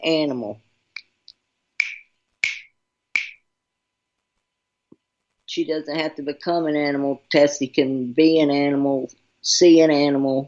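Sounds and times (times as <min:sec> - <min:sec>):
speech: 0:00.0 - 0:00.7, 0:05.6 - 0:10.4
crisp finger snaps: 0:01.8 - 0:03.4.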